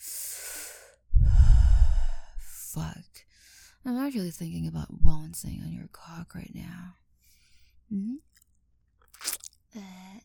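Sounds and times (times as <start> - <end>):
breathing: 0.0 - 2.5, 3.3 - 3.8, 7.2 - 7.8
speech: 2.8 - 7.0, 7.9 - 8.3.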